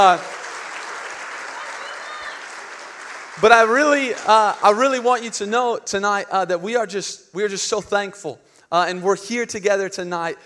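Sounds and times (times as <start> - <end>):
speech: 0.0 - 0.4, 3.4 - 10.4
audience clapping at a Christmas Eve church gathering: 0.0 - 5.4.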